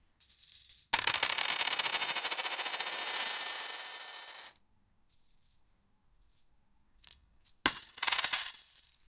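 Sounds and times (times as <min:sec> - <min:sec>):
coins clinking: 0:00.2 - 0:04.5, 0:05.1 - 0:05.6, 0:06.2 - 0:09.0.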